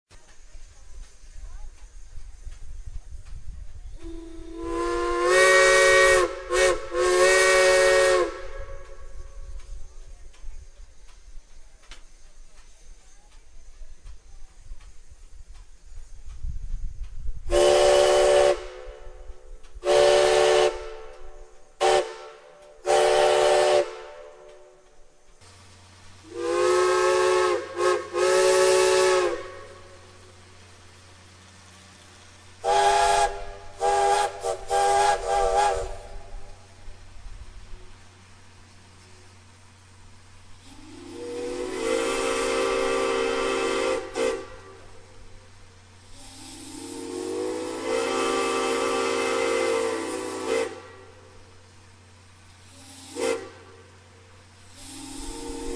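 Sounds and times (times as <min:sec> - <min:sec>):
steam whistle blowing: 0:04.0 - 0:09.6, 0:17.5 - 0:25.0, 0:26.2 - 0:30.2, 0:32.6 - 0:36.6, 0:40.6 - 0:45.4, 0:46.0 - 0:51.7, 0:52.6 - 0:55.7.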